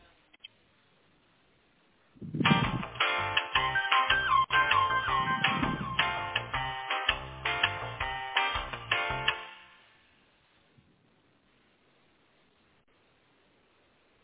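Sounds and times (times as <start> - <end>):
tinny melodic telephone hold tone on a phone line during a call transfer: 2.4 - 10.0.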